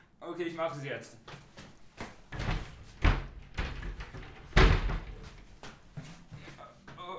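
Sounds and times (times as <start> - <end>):
speech: 0.3 - 1.4
doors slamming shut: 2.4 - 5.4.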